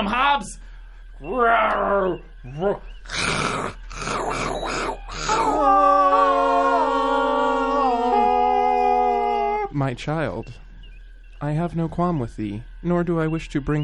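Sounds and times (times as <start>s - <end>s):
speech: 0.0s - 3.8s, 9.8s - 10.6s, 11.4s - 13.8s
person vocally imitating a tiger's growling roars and snarls with mouth: 3.1s - 9.7s.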